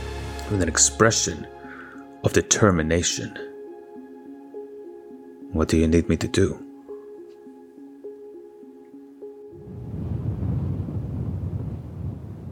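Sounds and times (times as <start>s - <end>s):
soft stepping musical tones: 0.0s - 10.3s
speech: 0.5s - 1.6s, 2.2s - 3.4s, 5.6s - 6.7s
wind roaring: 9.6s - 12.5s.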